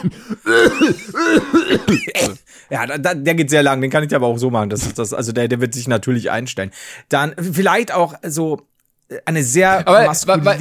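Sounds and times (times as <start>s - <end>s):
voice imitating an asthmatic's hacking cough: 0.0s - 2.4s
speech: 0.0s - 10.5s.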